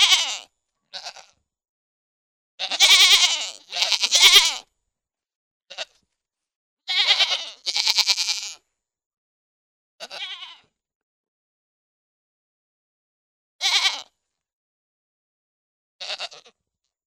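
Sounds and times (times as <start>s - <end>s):
goat bleating: 0.0s - 1.4s, 2.6s - 4.7s, 5.7s - 6.0s, 6.9s - 8.6s, 10.0s - 10.7s, 13.6s - 14.1s, 16.0s - 16.6s.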